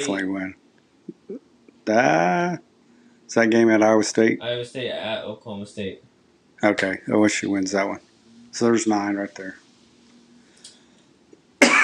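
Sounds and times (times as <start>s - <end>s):
speech: 0.0s - 2.7s, 3.3s - 9.6s
faint hum: 0.0s - 11.8s
loud cough: 11.6s - 11.8s.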